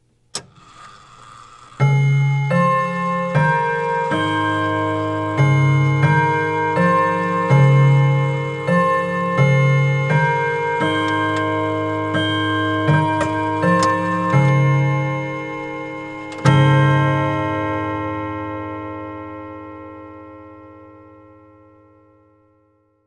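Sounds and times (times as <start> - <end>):
mechanical clock chime: 0.4 - 22.2.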